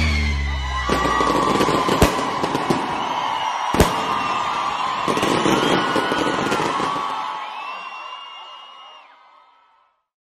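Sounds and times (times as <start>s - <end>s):
fireworks crackling: 0.0s - 8.0s.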